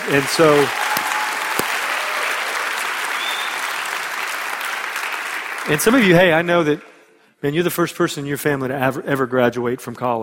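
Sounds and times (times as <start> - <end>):
audience clapping at a college graduation ceremony: 0.0 - 6.8
speech: 0.1 - 1.0, 5.7 - 10.2.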